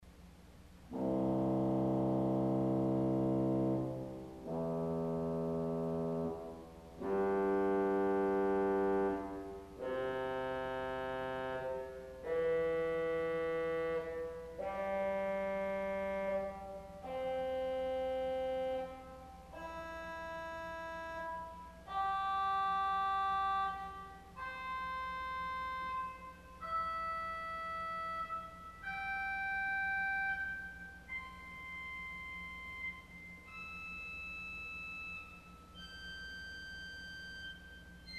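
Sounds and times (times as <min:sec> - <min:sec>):
English horn organ stop arpeggio: 0:00.9 - 0:34.0.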